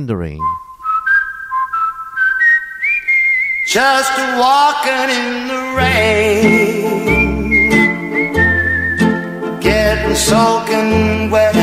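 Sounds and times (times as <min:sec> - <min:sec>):
speech: 0:00.0 - 0:00.6, 0:03.7 - 0:07.8, 0:10.1 - 0:11.5
whistled melody from a 1950s American pop recording: 0:00.4 - 0:11.6
soft accompaniment of a 1950s American pop recording: 0:05.7 - 0:11.6.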